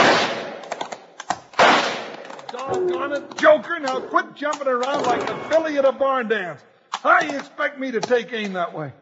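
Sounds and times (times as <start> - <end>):
rifle shots fired at night: 0.0 - 0.8, 1.5 - 2.4
speech: 2.6 - 9.0.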